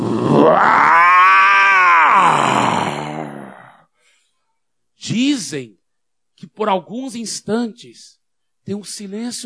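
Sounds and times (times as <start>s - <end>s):
lion roaring: 0.0s - 3.8s
speech: 0.1s - 0.8s, 5.5s - 5.8s, 6.4s - 9.4s.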